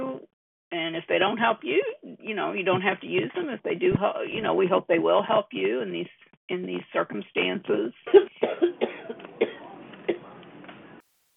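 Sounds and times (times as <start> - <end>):
speech: 1.0 - 8.8
person coughing through a muffled phone line: 8.1 - 10.4.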